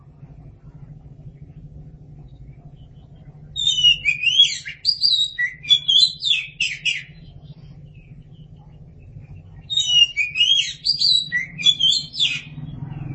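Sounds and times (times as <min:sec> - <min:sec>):
Oriental magpie-robin song with whistled and chattering notes: 0:02.8 - 0:13.1.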